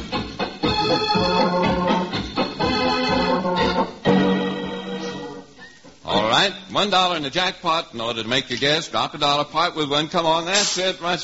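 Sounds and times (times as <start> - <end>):
organ playing a tune with sustained layered chords: 0.0 - 5.6
speech: 0.9 - 1.6, 6.4 - 11.2.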